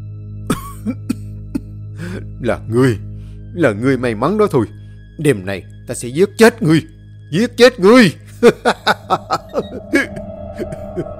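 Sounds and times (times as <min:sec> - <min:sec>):
old man coughing harshly: 0:00.5 - 0:01.7
speech: 0:00.8 - 0:01.2, 0:02.1 - 0:10.0
laughter: 0:08.3 - 0:11.1.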